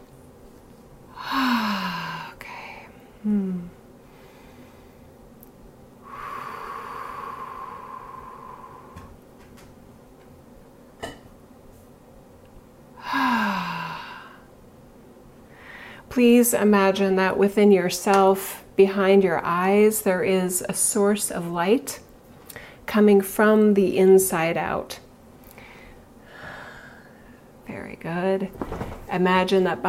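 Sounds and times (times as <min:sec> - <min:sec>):
slow deliberate breathing: 0:01.1 - 0:05.2, 0:06.0 - 0:09.2, 0:15.5 - 0:16.1, 0:25.5 - 0:27.5
speech: 0:03.2 - 0:03.8, 0:16.2 - 0:22.0, 0:22.9 - 0:25.0, 0:29.2 - 0:29.8.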